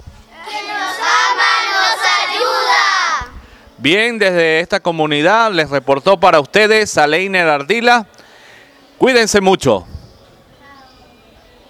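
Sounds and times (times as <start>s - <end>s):
group of young voices shouting a slogan in unison: 0.5s - 3.3s
speech: 3.8s - 8.2s, 9.0s - 10.0s.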